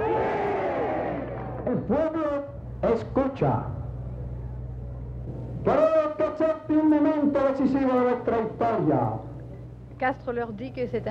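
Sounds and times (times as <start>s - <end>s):
large crowd shouting and roaring at a political rally in Havana: 0.0s - 2.0s
speech: 1.7s - 3.8s, 5.6s - 9.3s, 10.0s - 11.1s.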